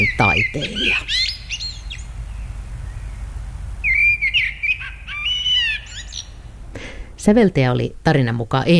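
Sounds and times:
speech: 0.0s - 1.4s, 7.2s - 8.7s
common blackbird singing outdoors: 0.0s - 3.2s, 3.8s - 6.4s
soft hum: 0.0s - 8.7s.

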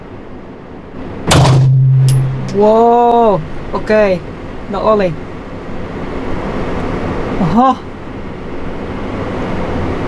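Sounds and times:
sustained low ringing hum: 0.0s - 10.0s
gunshot from a gun being fired: 1.3s - 2.2s
speech: 2.6s - 5.3s, 7.4s - 7.9s.

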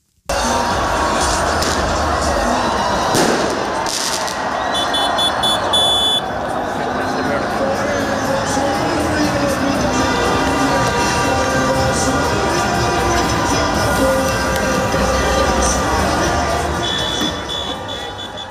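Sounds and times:
horns: 0.3s - 7.0s, 8.2s - 18.4s
people shouting in a crowd: 0.3s - 7.1s, 10.3s - 18.4s
dense outdoor crowd roaring and cheering an ice hockey win in a square: 0.3s - 18.4s
whistles: 4.6s - 6.2s, 16.8s - 18.4s.

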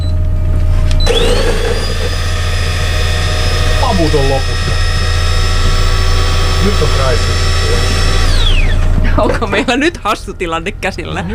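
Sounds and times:
coffee machine grinder running empty without beans: 1.0s - 8.9s
speech: 9.2s - 11.3s.

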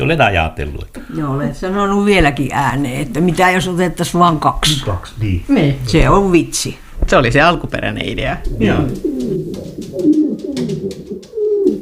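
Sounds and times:
speech: 0.0s - 9.1s
several pigeons cooing: 8.4s - 11.8s.

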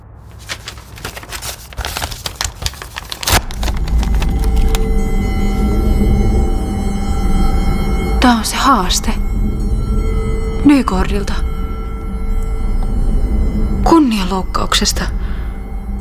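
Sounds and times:
steady loud droning hum: 0.0s - 16.0s
thick paper envelope rustling and crinkling: 0.2s - 4.9s
speech: 8.3s - 9.3s, 10.7s - 11.4s, 13.8s - 15.2s.

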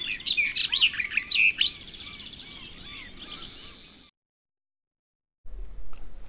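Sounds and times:
barred warbler singing a scratchy chattering warble: 0.0s - 4.1s.

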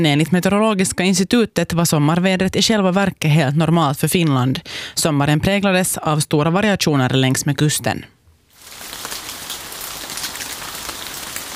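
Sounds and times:
speech: 0.0s - 8.2s
dense rain on a hard surface: 8.5s - 11.5s.

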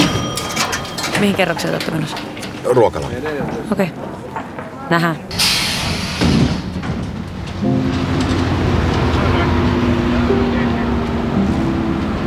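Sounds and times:
low engine rumble inside moving bus: 0.0s - 4.2s, 5.0s - 12.2s
indistinct passenger chatter murmuring: 0.0s - 12.2s
speech: 1.2s - 5.4s
sustained tonal drone: 7.6s - 12.2s.

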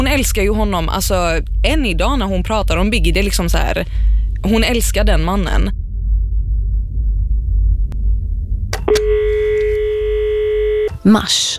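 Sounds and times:
low rumble: 0.0s - 11.5s
speech: 0.1s - 5.8s, 11.0s - 11.5s
steady clear telephone dial tone: 8.8s - 11.0s.

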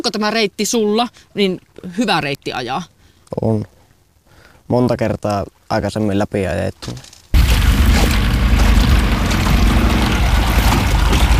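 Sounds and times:
speech: 0.0s - 3.8s, 4.7s - 7.1s
boat travelling on water with a low engine rumble: 7.4s - 11.3s
rushing water: 7.4s - 11.3s.

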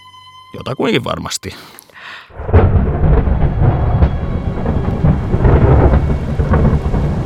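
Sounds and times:
speech: 0.5s - 3.0s
steady rain hissing during a storm: 2.0s - 7.2s
deep thunder rumbling during a heavy storm: 2.3s - 7.2s.

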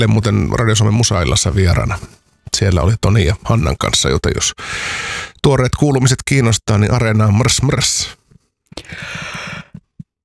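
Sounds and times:
speech: 0.0s - 8.2s, 8.8s - 9.5s
breathy catches: 8.7s - 10.0s
person faking an exaggerated yawn: 8.8s - 9.8s.

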